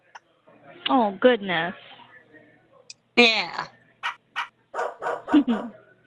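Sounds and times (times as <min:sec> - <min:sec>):
speech: 0:00.9 - 0:02.0, 0:03.2 - 0:03.8, 0:05.3 - 0:05.8
female dog barking and whining: 0:04.4 - 0:05.8.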